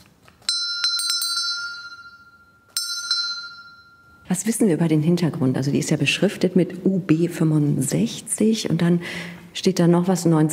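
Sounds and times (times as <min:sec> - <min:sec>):
small brass-toned table bell from a World War I U-boat ringing: 0:00.4 - 0:04.3
speech: 0:04.3 - 0:10.5.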